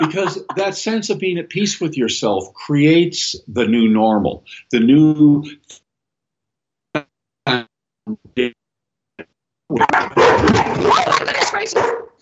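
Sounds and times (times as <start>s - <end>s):
laughter: 0.0s - 0.9s
speech: 0.0s - 5.8s, 7.0s - 8.6s, 9.7s - 12.1s
noisy commotion: 9.7s - 12.0s
dogs barking: 9.8s - 10.6s, 11.6s - 12.1s.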